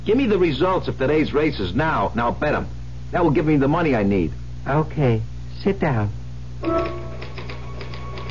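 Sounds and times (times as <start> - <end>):
speech: 0.0 - 7.0
typewriter typing: 6.6 - 8.2.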